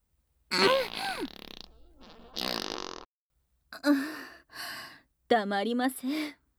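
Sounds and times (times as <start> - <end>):
loud sputtering farts: 0.5 - 3.1
speech: 5.3 - 6.4.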